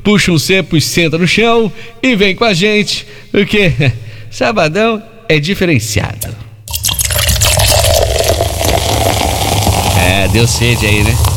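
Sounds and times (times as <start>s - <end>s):
speech: 0.0s - 6.4s, 10.1s - 11.2s
cold beer fizzing as it is poured into a glass: 6.7s - 11.3s.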